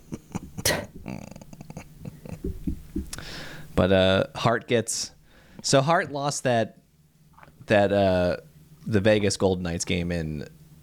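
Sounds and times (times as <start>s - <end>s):
low gurgling beer belch: 0.6s - 1.8s
speech: 3.8s - 6.8s, 7.7s - 10.6s.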